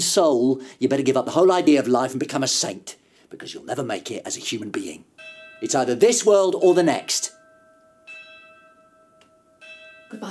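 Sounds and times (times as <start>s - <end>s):
speech: 0.0s - 7.4s
church bells ringing: 5.2s - 10.2s.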